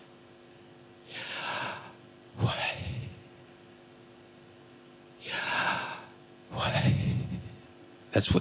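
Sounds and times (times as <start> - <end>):
person breathing in and out close to the microphone: 1.1 - 3.3, 5.2 - 7.6
speech: 8.2 - 8.3.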